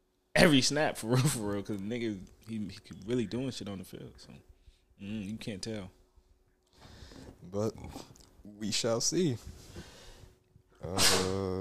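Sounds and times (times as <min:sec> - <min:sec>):
speech: 0:00.4 - 0:06.0, 0:07.4 - 0:09.9, 0:10.8 - 0:11.5
sneeze: 0:10.9 - 0:11.5.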